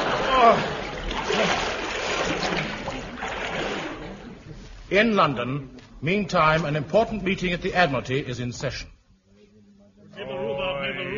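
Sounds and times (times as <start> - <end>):
heavy splash into deep water: 0.0 - 4.4
churning sloshing water: 0.0 - 4.6
speech: 0.4 - 0.7, 4.9 - 8.9, 10.2 - 11.1.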